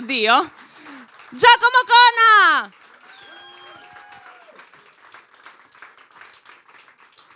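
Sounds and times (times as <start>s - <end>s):
audience applause: 0.0s - 7.3s
speech: 0.1s - 0.6s, 1.3s - 2.8s
audience whistles: 3.1s - 4.4s.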